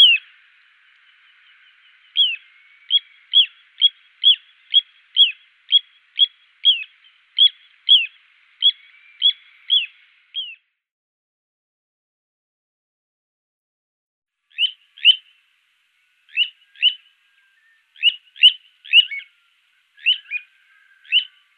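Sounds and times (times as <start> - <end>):
little ringed plover calling with downslurred whistles: 0.0 - 10.6, 14.6 - 15.3, 16.2 - 21.5.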